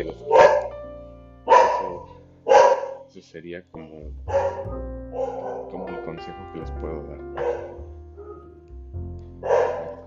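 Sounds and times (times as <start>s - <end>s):
speech: 0.0s - 0.2s, 3.2s - 7.8s
dog barking at home: 0.0s - 0.8s, 1.5s - 3.1s, 4.3s - 5.9s, 7.4s - 8.5s, 9.4s - 10.0s.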